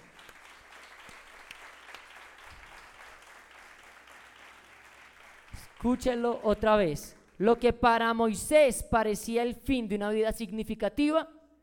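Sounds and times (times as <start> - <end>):
audience clapping: 0.0 - 7.7
speech: 5.6 - 11.4.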